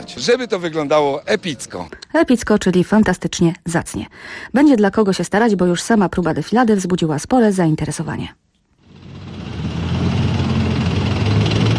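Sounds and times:
speech: 0.1s - 8.4s
armoured vehicle engines roaring at a military parade rehearsal: 8.8s - 11.7s.

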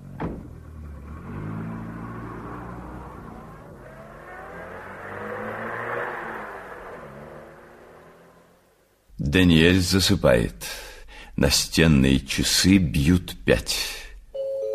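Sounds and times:
police car engine humming as it drives away: 0.0s - 9.1s
speech: 9.3s - 14.0s.

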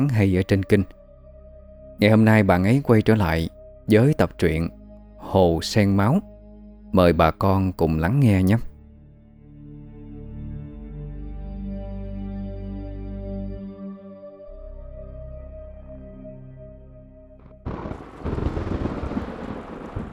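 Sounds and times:
speech: 0.0s - 1.0s, 2.0s - 6.3s, 6.9s - 8.7s
thunder in Saigon: 17.6s - 20.1s
sudden rain showers in Saigon: 17.7s - 20.1s.

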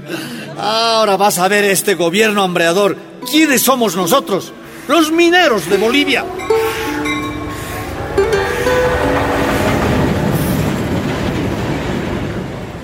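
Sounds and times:
speech: 0.1s - 6.5s
freight train of wagons arriving, rolling rumbling clatter: 8.0s - 12.8s.

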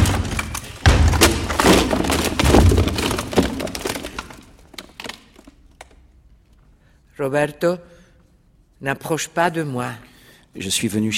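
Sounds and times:
door being kicked in during a stage play: 0.0s - 4.2s
door wood cracking and splintering: 0.0s - 6.0s
speech: 7.2s - 8.0s, 8.8s - 11.1s.

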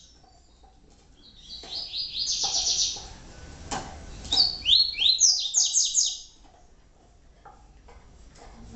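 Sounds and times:
double-collared seedeater song with high downslurred twittering: 1.2s - 3.1s, 4.3s - 6.3s.

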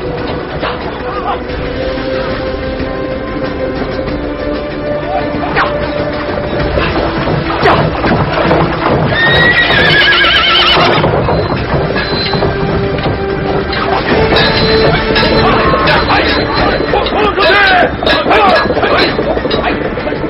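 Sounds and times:
horse hooves galloping across a bridge: 0.0s - 20.2s
high horse whinny: 8.8s - 12.4s.

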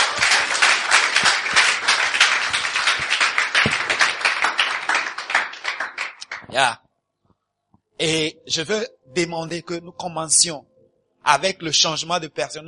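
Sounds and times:
congregation applauding at a church service: 0.0s - 6.5s
speech: 6.6s - 6.8s, 8.0s - 12.6s.

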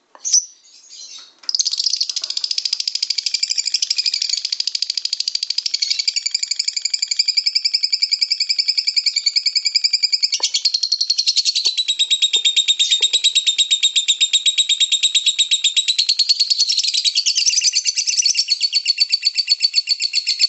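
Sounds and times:
champion lovebird ngekek song chatter: 0.2s - 20.4s.

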